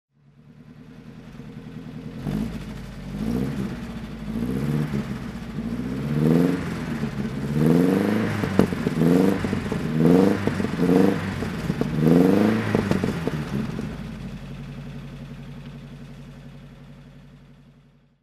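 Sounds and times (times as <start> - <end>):
1936 Lancia Augusta Pinin Farina cabriolet engine throttle: 0.4 - 14.5.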